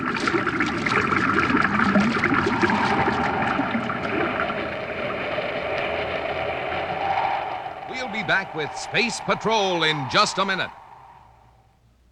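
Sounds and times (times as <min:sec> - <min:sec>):
water gushing and pouring into an enclosed space: 0:00.0 - 0:09.4
speech: 0:08.3 - 0:10.8.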